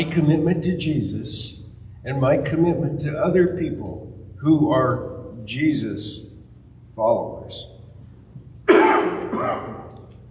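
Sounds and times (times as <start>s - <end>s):
speech: 0.0s - 6.3s, 7.0s - 7.7s, 9.4s - 9.7s
harsh throaty cough: 8.7s - 9.9s.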